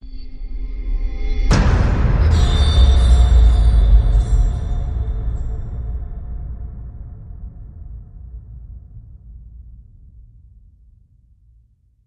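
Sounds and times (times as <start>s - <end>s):
spooky horror chimes hit: 1.5s - 7.0s.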